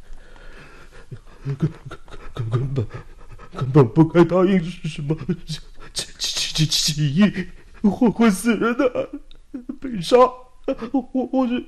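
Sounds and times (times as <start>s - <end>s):
person panting heavily after running: 0.2s - 3.8s, 5.2s - 6.0s
laughter: 1.4s - 5.6s, 7.3s - 11.6s
speech: 1.4s - 5.7s, 6.6s - 9.2s, 9.9s - 11.6s.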